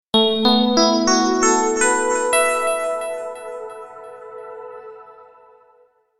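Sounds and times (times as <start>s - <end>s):
computer startup short musical phrase: 0.2s - 5.9s.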